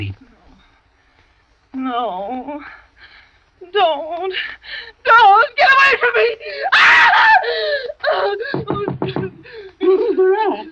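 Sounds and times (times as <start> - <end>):
speech: 0.0 - 0.2, 1.7 - 2.8, 3.6 - 9.2
woman screaming and wailing in distress in her sleep: 6.2 - 10.6.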